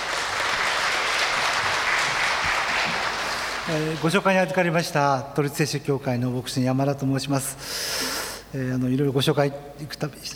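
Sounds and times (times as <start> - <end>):
audience applauding to welcome speaker: 0.0 - 4.5
speech: 3.7 - 10.3.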